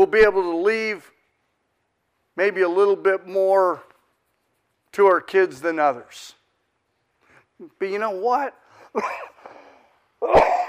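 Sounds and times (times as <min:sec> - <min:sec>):
speech: 0:00.0 - 0:01.1, 0:02.4 - 0:03.9, 0:04.9 - 0:06.4, 0:07.6 - 0:09.3, 0:10.2 - 0:10.6
single loud cough after a throaty rasp: 0:09.0 - 0:09.5, 0:10.2 - 0:10.6.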